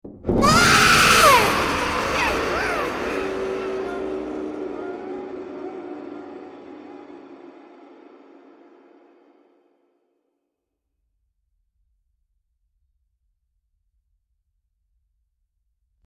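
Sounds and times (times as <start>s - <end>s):
distant child screaming: 0.3s - 6.0s.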